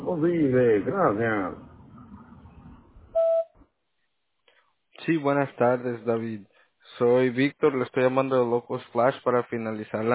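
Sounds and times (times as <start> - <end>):
speech: 0.1 - 1.7, 5.0 - 10.1
answering machine beep tone after voicemail greeting: 3.2 - 3.5.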